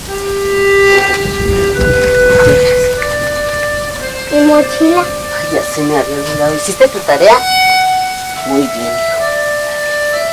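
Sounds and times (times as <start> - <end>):
low rumble: 0.0 - 8.4
faint sustained tones: 0.0 - 10.3
rain falling outside in very cold weather: 0.0 - 10.3
speech: 4.8 - 7.6, 8.5 - 9.1.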